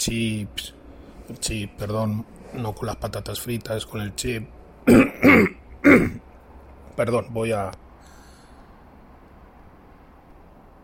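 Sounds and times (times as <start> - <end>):
speech: 0.0 - 6.2, 7.0 - 7.8
person clearing throat: 4.8 - 6.2.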